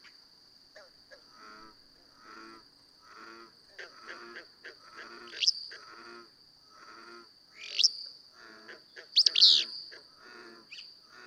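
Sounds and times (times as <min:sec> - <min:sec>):
steady high insect tone: 0:00.0 - 0:11.2
Willow flycatcher giving buzzy note and burry sneezing song phrase: 0:07.5 - 0:08.1, 0:09.2 - 0:10.0
faint bird chatter: 0:09.0 - 0:10.9.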